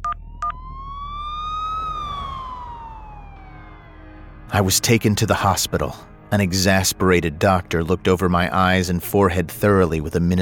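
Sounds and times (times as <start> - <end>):
ambulance siren wailing: 0.0 - 6.0
low engine rumble: 0.0 - 8.6
speech: 4.5 - 10.4.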